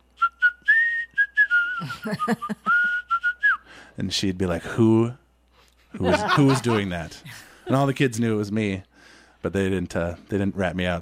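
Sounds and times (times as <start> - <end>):
person whistling a quick wavering tune with lips kept still: 0.2 - 3.7
laughter: 1.8 - 2.9, 6.0 - 8.2
speech: 1.8 - 3.0, 4.0 - 5.2, 6.0 - 11.0.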